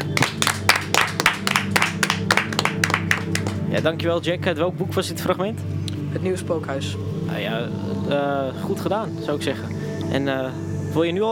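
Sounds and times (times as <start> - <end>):
audience applause: 0.0 - 3.8
speech: 3.8 - 11.3.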